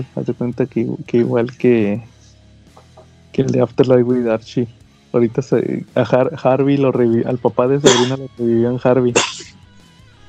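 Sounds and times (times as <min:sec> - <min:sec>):
speech: 0:00.0 - 0:02.1, 0:03.3 - 0:09.6
person sneezing: 0:07.8 - 0:08.2, 0:09.2 - 0:09.6.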